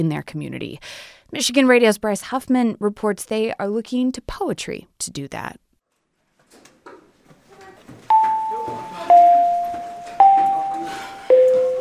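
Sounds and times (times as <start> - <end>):
speech: 0.0 - 5.6
electronic school bell chiming descending notes as the final bell of the day: 8.1 - 11.7.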